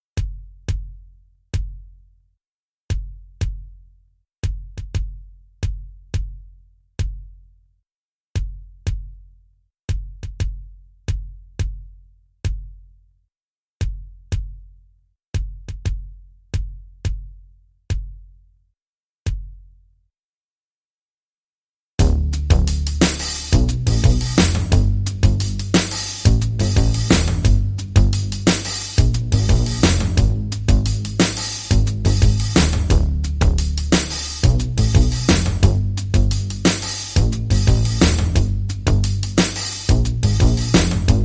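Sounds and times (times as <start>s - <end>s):
big beat drum and bass music: 0.2s - 1.0s, 1.6s - 1.9s, 2.9s - 3.8s, 4.4s - 6.4s, 7.0s - 7.4s, 8.4s - 9.2s, 9.9s - 11.9s, 12.5s - 12.8s, 13.8s - 14.6s, 15.4s - 18.2s, 22.0s - 41.2s.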